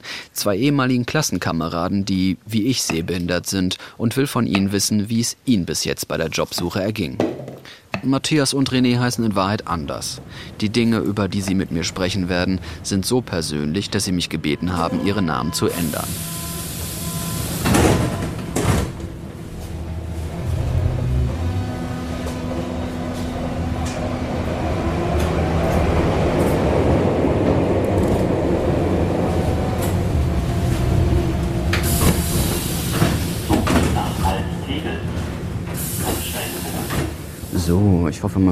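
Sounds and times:
speech: 0:00.4 - 0:16.5, 0:38.2 - 0:38.5
subway station announcements: 0:08.3 - 0:38.5
subway train rumbling: 0:08.6 - 0:38.5
subway train sliding door sounds: 0:15.7 - 0:37.5.

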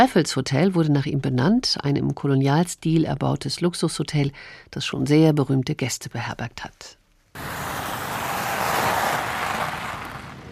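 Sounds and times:
speech: 0:00.0 - 0:07.6
car tires crunching on gravel: 0:07.4 - 0:10.5.

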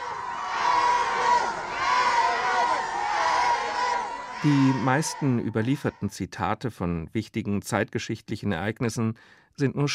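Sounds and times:
large crowd shouting and cheering: 0:00.0 - 0:06.2
speech: 0:04.4 - 0:09.9.

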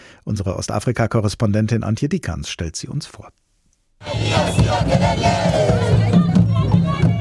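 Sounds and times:
speech: 0:00.2 - 0:03.5, 0:04.1 - 0:06.2
protest march crowd of climate activists chanting: 0:04.0 - 0:07.1.

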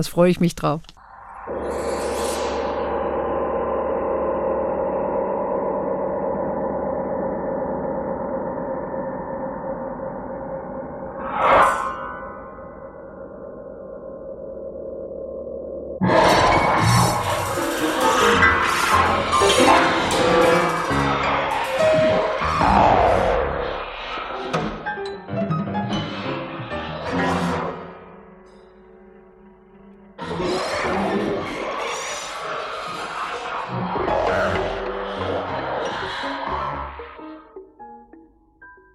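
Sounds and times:
speech: 0:00.0 - 0:00.9
low droning synthetic tone of a played electronic music recording: 0:01.0 - 0:37.6.

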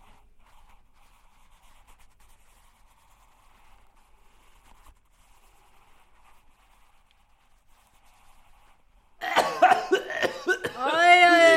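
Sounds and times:
person coughing: 0:09.2 - 0:11.5.

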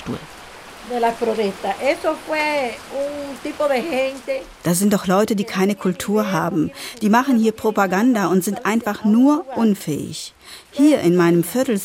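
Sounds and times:
heavy rain: 0:00.0 - 0:11.8
speech: 0:00.0 - 0:11.8.

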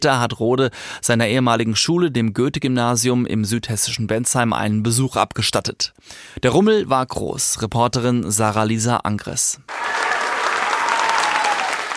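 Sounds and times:
speech: 0:00.0 - 0:10.1
crowd of school students applauding: 0:09.7 - 0:11.9
excited shouts from school students: 0:09.7 - 0:11.9.

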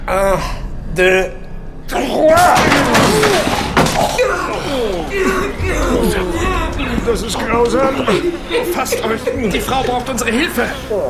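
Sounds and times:
speech: 0:00.1 - 0:03.5, 0:04.2 - 0:11.0
excited voices talking over one another: 0:01.9 - 0:11.0
attic door being forced open with heavy thuds and a bang: 0:02.3 - 0:04.3
laughter: 0:02.6 - 0:11.0.

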